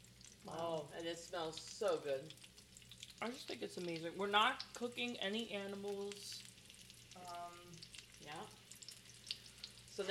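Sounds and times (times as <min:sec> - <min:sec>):
food frying in hot oil in a pan: 0:00.0 - 0:10.0
speech: 0:00.4 - 0:02.5, 0:03.2 - 0:06.4, 0:07.2 - 0:08.6.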